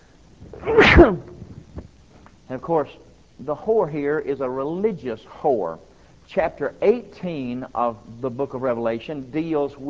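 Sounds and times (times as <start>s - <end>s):
loud sneeze: 0.4s - 1.6s
speech: 1.0s - 1.3s, 2.5s - 9.8s.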